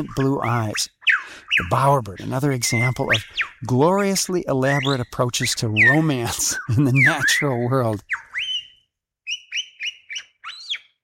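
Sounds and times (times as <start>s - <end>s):
speech: 0.0s - 8.3s
pied butcherbird singing fluting notes in a forest in the morning: 0.0s - 11.0s.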